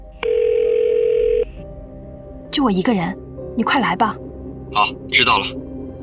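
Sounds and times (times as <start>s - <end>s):
telephone dial tone: 0.2s - 1.5s
speech: 2.6s - 5.6s.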